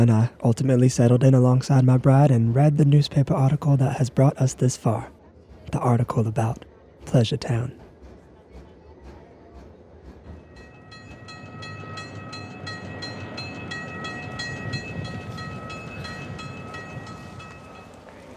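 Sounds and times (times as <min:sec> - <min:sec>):
speech: 0:00.0 - 0:07.8
train rolling along the rails: 0:00.0 - 0:18.3
rhythmic clatter of train wheels: 0:04.8 - 0:18.3
high metallic whine of a train: 0:10.4 - 0:18.0.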